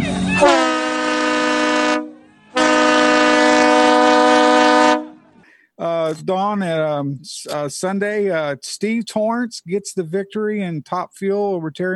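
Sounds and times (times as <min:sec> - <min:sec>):
loud train horn blasts: 0:00.4 - 0:05.2
speech: 0:06.1 - 0:11.9.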